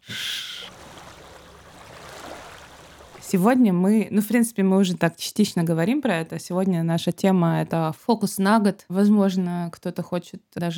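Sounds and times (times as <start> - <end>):
sea waves sound effect: 0.0 - 3.6
speech: 3.3 - 10.7.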